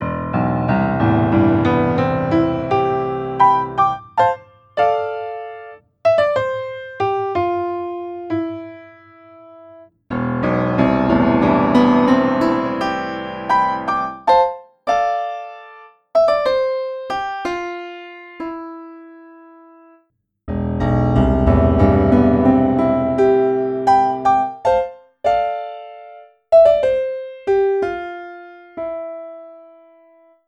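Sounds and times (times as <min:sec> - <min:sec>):
grand piano playing pop hard: 0:00.0 - 0:19.3, 0:20.5 - 0:30.2.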